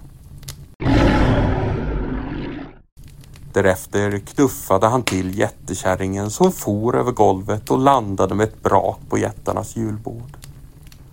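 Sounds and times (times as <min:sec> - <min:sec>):
bear roaring: 0:00.8 - 0:02.9
speech: 0:03.6 - 0:10.4.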